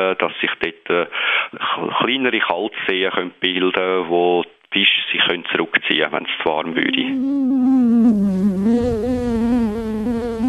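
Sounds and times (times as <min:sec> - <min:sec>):
speech: 0:00.0 - 0:09.2
mosquito buzzing: 0:06.8 - 0:10.4.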